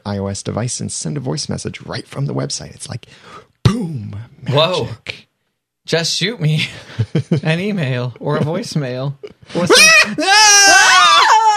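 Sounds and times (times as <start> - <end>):
speech: 0.1 - 3.5, 4.4 - 5.2, 5.9 - 10.9
people screaming: 9.6 - 11.5.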